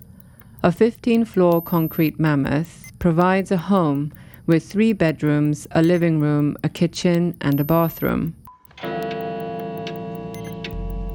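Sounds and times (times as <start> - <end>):
old grandfather clock ticking: 0.0 - 11.1
speech: 0.6 - 8.4
loud sustained ringing tone: 8.8 - 11.1.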